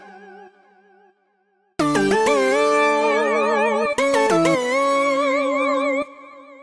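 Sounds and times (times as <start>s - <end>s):
synth melody: 1.8s - 6.3s.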